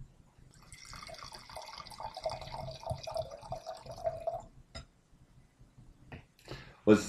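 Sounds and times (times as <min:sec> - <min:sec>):
wine pouring into a glass: 0:00.6 - 0:04.5
speech: 0:06.9 - 0:07.0.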